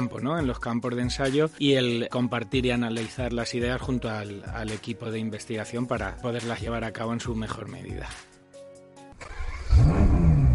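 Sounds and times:
speech: 0:00.0 - 0:08.3
sports car engine cranking and catching: 0:09.2 - 0:10.5
sports car engine roaring as it accelerates along a track: 0:09.4 - 0:10.5.

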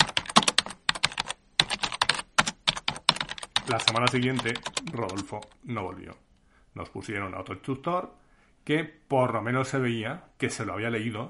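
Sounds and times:
rapid typing on computer keyboards during a weekly assessment: 0:00.0 - 0:05.6
speech: 0:03.7 - 0:11.2.

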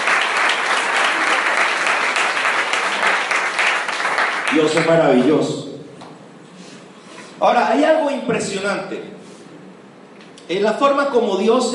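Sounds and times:
audience applauding: 0:00.0 - 0:05.3
speech: 0:04.6 - 0:05.7, 0:07.4 - 0:09.2, 0:10.5 - 0:11.7.

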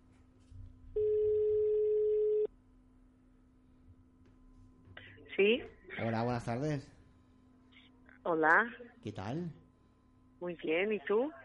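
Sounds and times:
phone line ringing tone: 0:01.0 - 0:02.5
speech: 0:05.4 - 0:07.0, 0:08.2 - 0:09.6, 0:10.4 - 0:11.4.

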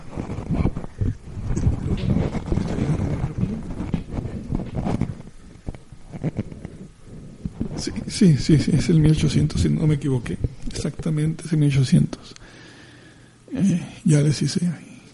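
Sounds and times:
handling noise of microphone with foam windscreen being turned over: 0:00.0 - 0:11.2
speech: 0:07.8 - 0:12.5, 0:13.7 - 0:14.8.

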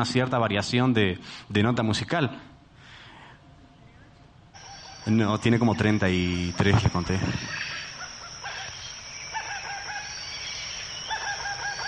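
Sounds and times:
speech: 0:00.0 - 0:02.5, 0:05.0 - 0:07.7
dense hissing chorus of sound: 0:02.5 - 0:11.8
bird calling close to the microphone: 0:03.8 - 0:11.8.

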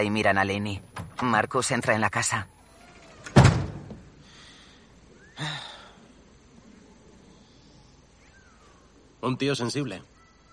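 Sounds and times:
speech: 0:00.0 - 0:02.6, 0:09.2 - 0:10.1
house door shutting with a loud thud: 0:03.2 - 0:04.1.

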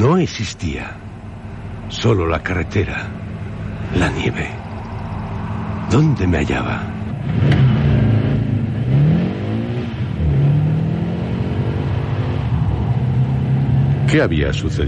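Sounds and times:
speech: 0:00.0 - 0:01.1, 0:01.9 - 0:03.2, 0:03.9 - 0:04.6, 0:05.9 - 0:07.7, 0:14.1 - 0:14.8
car engine starting and revving: 0:01.0 - 0:14.8.

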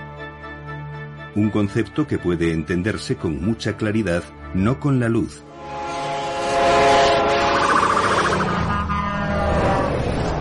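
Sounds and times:
speech: 0:01.4 - 0:05.8
passing train horn blaring with Doppler pitch shift: 0:05.5 - 0:10.0.

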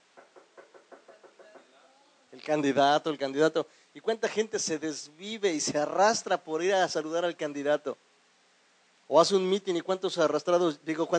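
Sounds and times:
knocking on a door: 0:00.0 - 0:01.7
speech: 0:02.4 - 0:08.1, 0:09.1 - 0:11.1.

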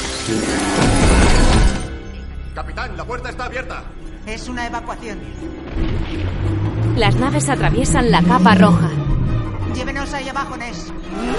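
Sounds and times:
glass pane shattering as bodies crash through it: 0:00.0 - 0:02.0
speech: 0:00.3 - 0:01.0, 0:02.6 - 0:09.1, 0:09.7 - 0:11.3.

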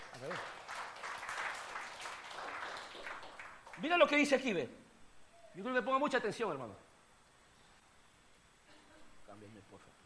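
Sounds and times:
congregation applauding: 0:00.0 - 0:04.3
speech: 0:03.8 - 0:04.8, 0:05.6 - 0:06.9, 0:09.3 - 0:10.0.

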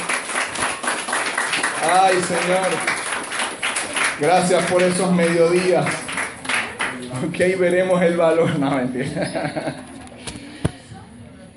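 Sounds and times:
crowd applauding: 0:00.0 - 0:08.4
speech: 0:01.8 - 0:03.0, 0:04.2 - 0:06.0, 0:07.1 - 0:09.9
laughter: 0:08.2 - 0:10.1.

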